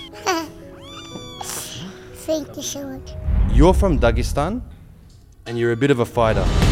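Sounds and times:
kitten meowing: 0.0 - 1.9
speech: 2.3 - 4.8, 5.5 - 6.6.

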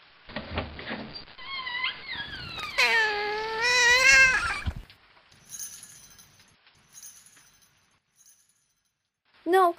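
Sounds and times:
cat meowing: 1.4 - 4.8.

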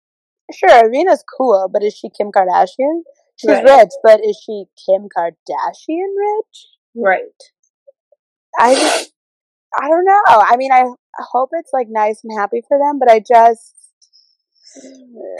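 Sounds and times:
speech: 0.5 - 7.6, 8.6 - 9.1, 9.7 - 13.8, 14.8 - 15.3
human sneeze: 3.5 - 3.8, 8.6 - 9.1.

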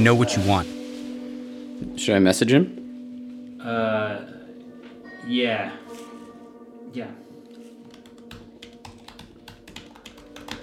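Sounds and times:
speech: 0.0 - 0.8, 1.9 - 2.8, 3.6 - 4.3, 5.2 - 5.9, 6.9 - 7.2
typing on a computer keyboard: 7.9 - 10.6.

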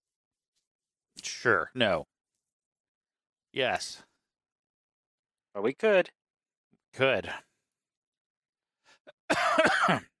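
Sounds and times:
speech: 1.2 - 2.1, 3.6 - 4.1, 5.6 - 6.2, 6.9 - 7.5, 9.3 - 10.1
raspy hacking cough: 9.2 - 10.1.

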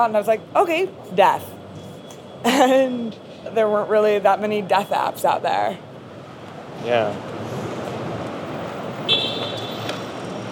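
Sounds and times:
speech: 0.0 - 1.6, 2.4 - 5.9, 6.8 - 7.4
road traffic noise: 0.0 - 10.5
car horn honking: 9.0 - 9.9.

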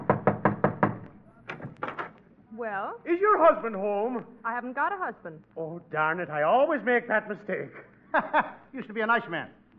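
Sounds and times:
firm knocks on the door of a house: 0.0 - 2.1
speech: 2.6 - 9.6.

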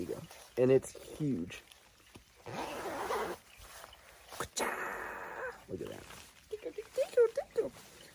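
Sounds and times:
speech: 0.0 - 1.7, 5.7 - 7.9
running jacket armpit zipper being unzipped: 2.4 - 3.4.

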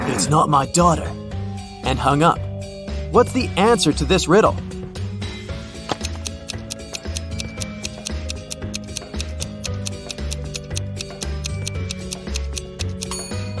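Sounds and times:
speech: 0.2 - 1.2, 1.8 - 2.5, 3.1 - 4.7
clock ticking: 6.0 - 13.2.

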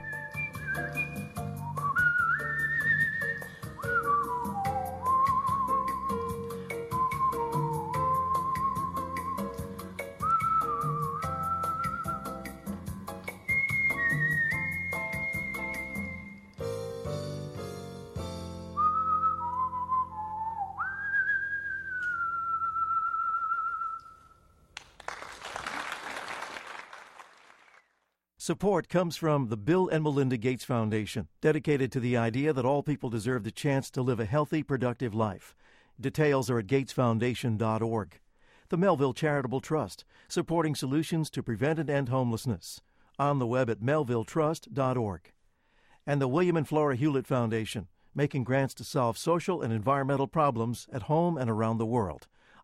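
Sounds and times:
person whistling a tune: 0.0 - 16.6, 18.7 - 24.4
steady rhythmic instrumental backing: 0.0 - 18.8
speech: 28.5 - 45.4, 46.1 - 52.6.

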